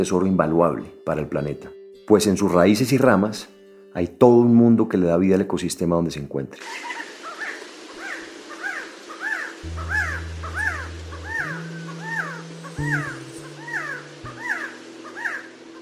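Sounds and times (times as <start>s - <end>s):
speech: 0.0s - 7.0s
quetzal song: 6.6s - 15.7s
low sustained steady tones: 9.6s - 15.7s.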